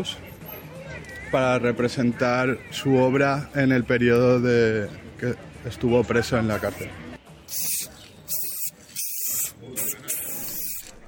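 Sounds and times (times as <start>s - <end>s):
speech: 0.0s - 0.3s, 1.3s - 7.7s
faint street background: 0.0s - 11.0s
spray paint hissing from an aerosol can onto canvas: 7.5s - 11.0s.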